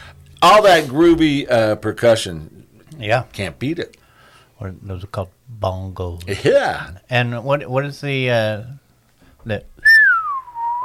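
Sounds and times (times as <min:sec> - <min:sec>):
speech: 0:00.4 - 0:04.0, 0:04.6 - 0:08.8, 0:09.4 - 0:09.7
slide whistle: 0:09.8 - 0:10.8.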